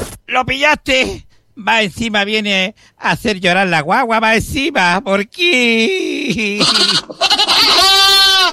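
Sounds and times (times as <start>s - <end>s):
speech: 0.4s - 7.9s
goats bleating: 6.4s - 8.5s.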